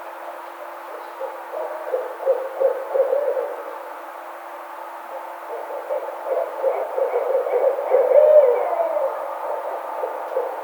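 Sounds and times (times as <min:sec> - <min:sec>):
steady background hum: 0:00.0 - 0:10.6
Barred owl hoots: 0:00.9 - 0:03.8, 0:05.1 - 0:10.6.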